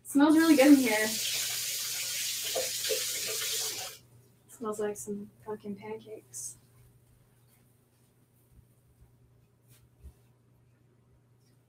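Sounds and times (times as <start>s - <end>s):
speech: 0.1s - 1.4s, 4.6s - 6.6s
person washing hands at a sink: 0.3s - 4.0s
tap water running from a faucet into a sink: 0.3s - 4.0s.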